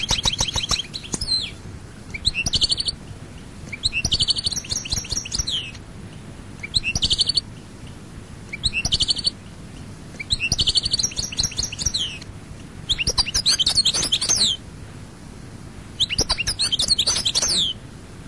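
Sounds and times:
European goldfinch song: 0:00.0 - 0:05.8, 0:06.6 - 0:07.6, 0:08.5 - 0:09.5, 0:10.1 - 0:14.6, 0:16.0 - 0:17.8.

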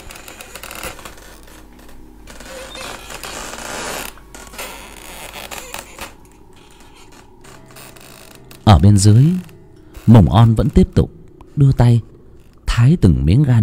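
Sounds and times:
footsteps creaking on slatted wooden floorboards: 0:00.0 - 0:12.7
speech: 0:08.7 - 0:09.5, 0:10.1 - 0:12.1, 0:12.8 - 0:13.6.

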